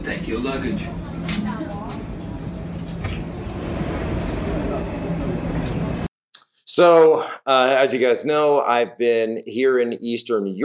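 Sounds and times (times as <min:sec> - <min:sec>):
subway train rumble inside a moving train: 0:00.0 - 0:06.1
speech: 0:00.3 - 0:02.1, 0:06.8 - 0:10.6.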